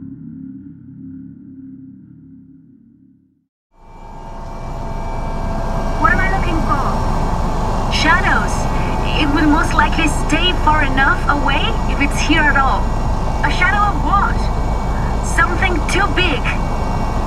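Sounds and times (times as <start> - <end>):
low engine hum: 3.8 - 17.2
speech: 9.7 - 14.6, 15.2 - 16.7.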